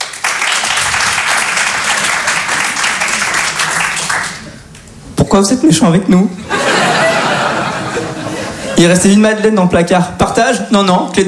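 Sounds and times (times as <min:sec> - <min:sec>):
live audience applause: 0:00.0 - 0:04.6
speech: 0:05.3 - 0:06.6, 0:08.8 - 0:11.2
laughter: 0:06.4 - 0:08.8.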